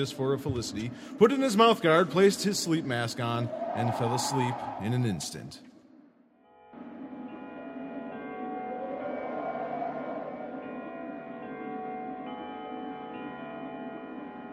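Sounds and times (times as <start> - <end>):
speech: 0.0 - 5.7
heavy church bell chiming the hour: 6.5 - 14.5.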